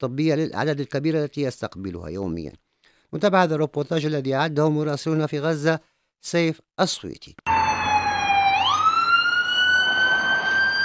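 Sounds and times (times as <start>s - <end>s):
speech: 0.0s - 7.5s
ambulance siren wailing in Khan Younis Gaza: 7.5s - 10.8s.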